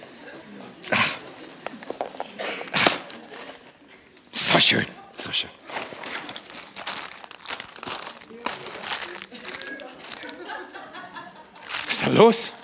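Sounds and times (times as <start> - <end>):
laughter: 0.0 - 3.8, 8.4 - 12.6
paper crumpling and crinkling: 0.8 - 3.8, 5.6 - 10.6, 11.6 - 12.6
speech: 4.5 - 5.7, 12.2 - 12.6.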